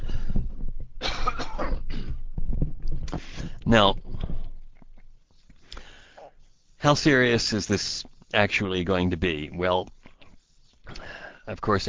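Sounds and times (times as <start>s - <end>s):
person coughing harshly: 1.0s - 2.2s
speech: 3.7s - 4.0s, 6.8s - 10.0s, 11.5s - 11.8s.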